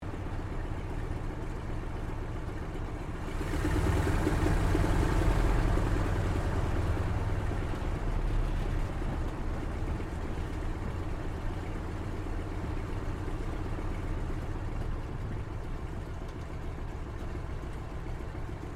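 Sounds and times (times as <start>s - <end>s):
CAC CA-16 Wirraway aircraft taxiing heard from the interior: 0.0s - 18.7s.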